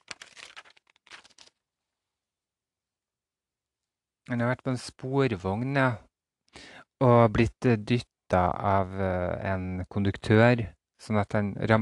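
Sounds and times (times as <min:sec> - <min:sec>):
paper pages being turned: 0:00.0 - 0:01.7
speech: 0:04.3 - 0:11.8.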